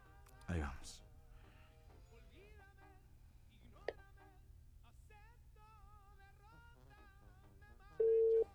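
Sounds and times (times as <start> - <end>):
speech: 0.5 - 1.1
outgoing phone call ringing tone: 8.0 - 8.5.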